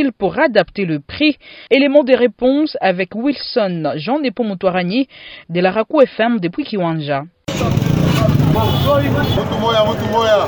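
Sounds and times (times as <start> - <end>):
speech: 0.0 - 10.4
motorcycle and truck traffic engine rumble at roundabout: 7.5 - 10.4.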